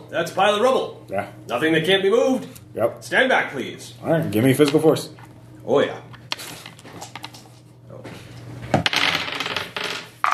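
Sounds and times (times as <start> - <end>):
faint steady hum: 0.0 - 10.3
speech: 0.1 - 6.1
dice clattering across a hard tabletop: 8.7 - 10.3.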